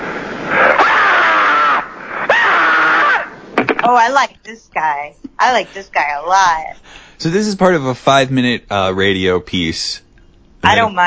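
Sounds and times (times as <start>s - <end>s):
person screaming in long loud strained bursts: 0.7s - 3.3s
speech: 3.9s - 10.0s, 10.6s - 11.0s.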